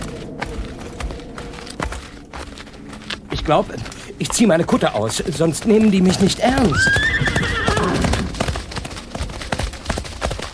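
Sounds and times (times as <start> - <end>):
horse hooves clopping on hard ground: 0.0 - 10.5
speech: 3.4 - 7.8
riderless horse whinnying: 6.6 - 8.4.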